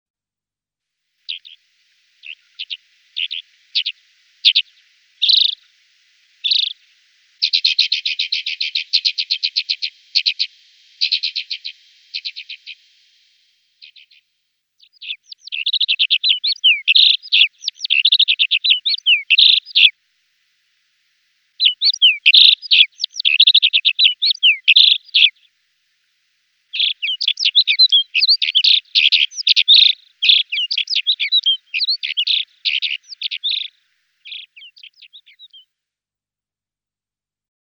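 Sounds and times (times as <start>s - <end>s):
alpine accentor singing: 1.3s - 1.6s, 2.2s - 5.7s, 6.3s - 12.8s, 14.8s - 19.9s, 21.6s - 25.4s, 26.7s - 35.6s.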